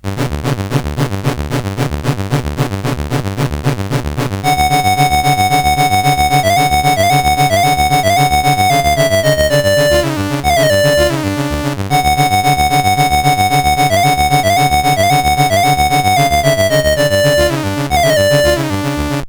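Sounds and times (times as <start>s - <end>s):
chiptune music on a CSG8580R5 sound chip: 0.1s - 19.2s.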